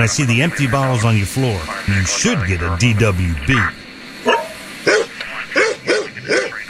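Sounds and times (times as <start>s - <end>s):
speech: 0.0s - 4.4s
dog barking: 4.2s - 6.6s.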